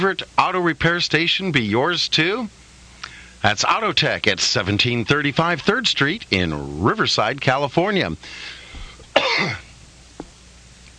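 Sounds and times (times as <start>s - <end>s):
speech: 0.0s - 2.6s, 3.4s - 8.6s, 9.4s - 9.6s
faint catch of breath: 3.0s - 3.4s, 8.2s - 9.2s
person coughing into the microphone: 9.1s - 9.7s.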